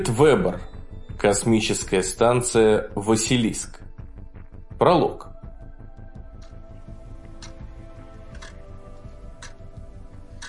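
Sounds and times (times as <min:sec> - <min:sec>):
speech: 0:00.0 - 0:03.8, 0:04.8 - 0:05.3
antique clock ticking in a conference room: 0:06.3 - 0:10.4.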